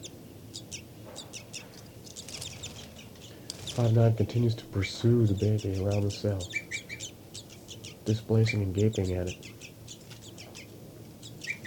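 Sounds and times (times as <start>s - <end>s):
captive bird flight call series in an enclosure cell: 0.0s - 11.6s
speech: 3.8s - 6.6s, 8.0s - 9.5s.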